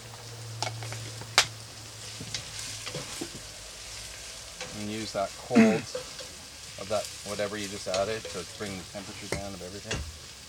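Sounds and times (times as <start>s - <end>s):
diced peppers sizzling in a frying pan: 0.0s - 10.4s
soft stirring scrapes: 2.0s - 9.4s
speech: 4.8s - 6.1s, 6.9s - 10.2s.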